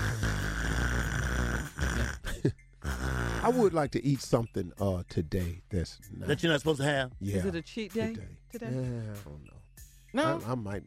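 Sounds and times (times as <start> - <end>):
person imitating heavy wheezing breathing of an overweight person: 0.0 - 3.6
speech: 3.4 - 10.8.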